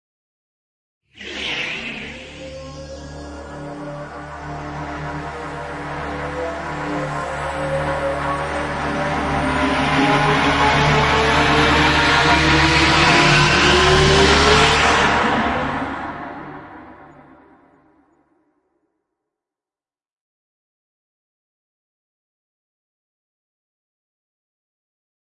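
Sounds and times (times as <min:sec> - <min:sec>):
riser sound effect: 0:01.2 - 0:17.7.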